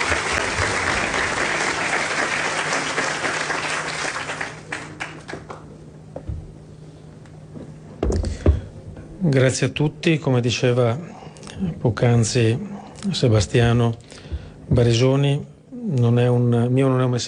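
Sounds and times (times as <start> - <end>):
crowd applauding: 0.0 - 5.8
speech: 9.2 - 14.1, 14.7 - 17.2.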